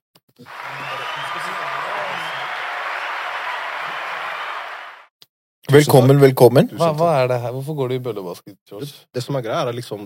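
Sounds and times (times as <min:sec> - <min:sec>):
speech: 0:00.4 - 0:00.8, 0:05.7 - 0:10.0
audience applause: 0:00.4 - 0:05.1.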